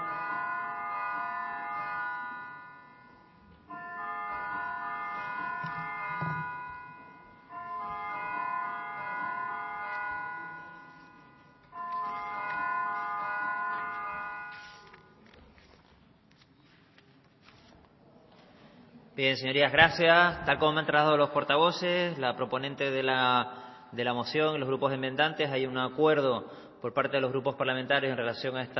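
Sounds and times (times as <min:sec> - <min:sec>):
electric bell ringing to call a parliamentary vote: 0:00.0 - 0:15.2
speech: 0:19.2 - 0:28.7.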